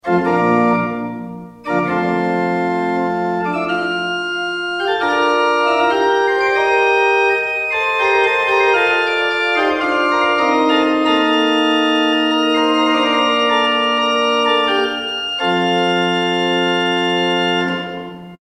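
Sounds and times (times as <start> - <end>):
pipe organ with Coppel 8 Flöte 4 Oktave 2 stops: 0.0 - 18.4.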